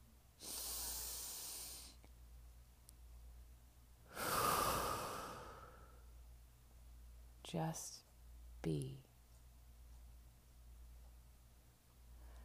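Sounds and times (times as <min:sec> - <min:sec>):
quiet slow deep breath: 0:00.4 - 0:02.0, 0:04.1 - 0:06.1, 0:12.1 - 0:12.4
speech: 0:07.5 - 0:09.1.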